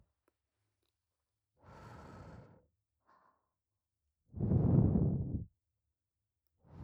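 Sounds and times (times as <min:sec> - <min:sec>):
gentle blowing on the ear: 0:04.4 - 0:05.5.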